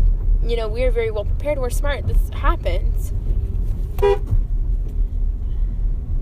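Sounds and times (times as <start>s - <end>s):
truck engine and road noise in traffic in Texas: 0.0s - 6.2s
speech: 0.4s - 3.2s, 4.0s - 4.4s
car horn toot in traffic in Texas: 4.0s - 4.4s.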